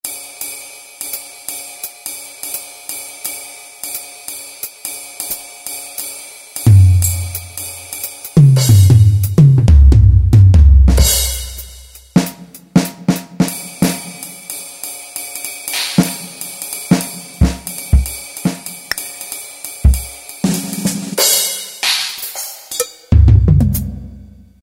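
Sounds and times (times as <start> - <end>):
jazz drum kit on Yamaha YPT-400 keyboard: 6.0 - 24.4.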